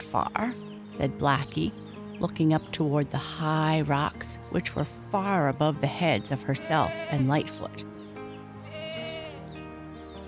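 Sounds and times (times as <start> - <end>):
speech: 0.1 - 8.0
goat bleating: 6.5 - 7.6, 8.6 - 9.4.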